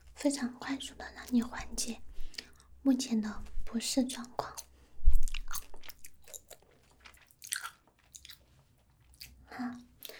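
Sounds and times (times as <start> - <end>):
speech: 0.2 - 2.1, 2.8 - 4.7, 9.6 - 9.9
chewing a cold remedy with crunchy bites: 1.2 - 2.7, 4.0 - 10.1.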